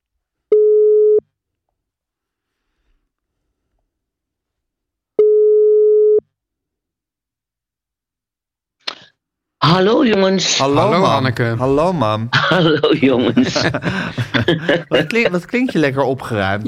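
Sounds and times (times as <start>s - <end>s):
ringback tones on a phone line: 5.2s - 6.2s
speech: 9.7s - 16.6s
laughter: 10.7s - 16.6s.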